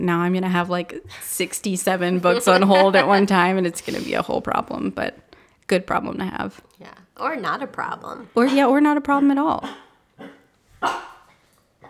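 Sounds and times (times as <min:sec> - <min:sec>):
speech: 0:00.0 - 0:09.8, 0:10.8 - 0:11.1
laughter: 0:02.0 - 0:03.7
dog barking: 0:09.6 - 0:11.3.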